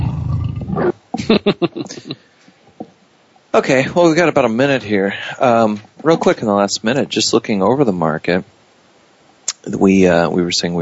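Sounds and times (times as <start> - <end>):
tiger roar: 0.0 - 1.0
speech: 1.3 - 2.2, 3.6 - 8.6, 9.6 - 10.8.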